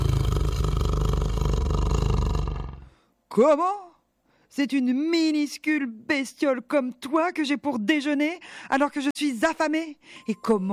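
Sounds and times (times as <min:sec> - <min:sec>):
tiger roaring angrily: 0:00.0 - 0:03.0
speech: 0:03.4 - 0:03.8, 0:04.5 - 0:10.7.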